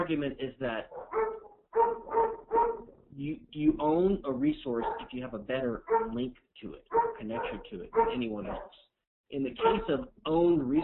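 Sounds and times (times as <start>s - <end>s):
speech: 0.1s - 1.0s, 3.2s - 10.8s
dog barking at someone walking by: 0.8s - 3.0s, 4.7s - 5.2s, 5.8s - 6.3s, 6.9s - 8.8s, 9.6s - 10.0s.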